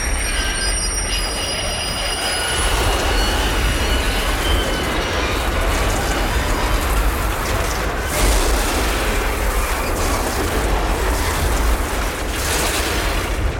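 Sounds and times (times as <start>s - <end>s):
high metallic train wheel squeal: 0.0s - 6.1s
freight train wagons rumbling on rails: 0.0s - 13.5s.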